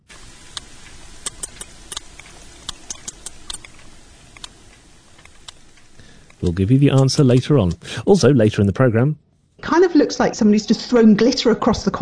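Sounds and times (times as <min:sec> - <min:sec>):
sperm whale clicks recorded underwater: 0:00.4 - 0:07.9
speech: 0:06.4 - 0:12.0.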